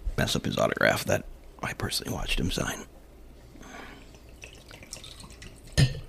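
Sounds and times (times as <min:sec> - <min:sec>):
speech: 0:00.2 - 0:02.9
bourbon glugging and trickling from a bottle: 0:04.1 - 0:06.0.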